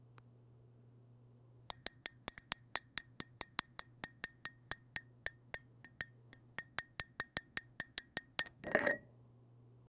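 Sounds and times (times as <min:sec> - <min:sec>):
spoon stirring coffee in a mug: 0:01.7 - 0:09.0.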